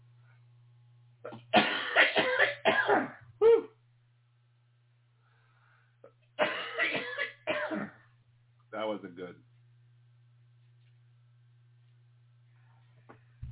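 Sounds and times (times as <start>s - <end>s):
faint low hum: 0.0s - 13.5s
harsh coughing after swallowing the wrong way: 1.3s - 3.7s, 6.4s - 8.1s.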